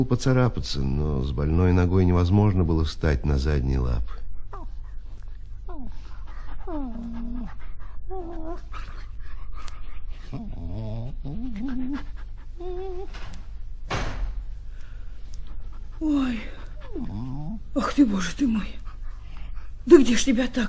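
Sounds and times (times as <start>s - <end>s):
speech: 0.0s - 4.2s, 16.0s - 18.8s, 19.9s - 20.6s
dog panting: 3.6s - 13.6s, 14.5s - 20.6s
dog whimpering and whining: 4.4s - 4.8s, 5.7s - 13.4s, 15.8s - 18.7s.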